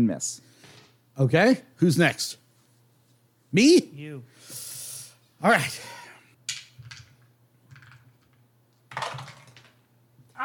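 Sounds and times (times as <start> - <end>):
speech: 0.0 - 0.5, 1.2 - 2.4, 3.5 - 4.7, 5.4 - 6.0
low hum: 0.0 - 10.4
dice clattering and rattling down a dice tower: 6.5 - 9.8.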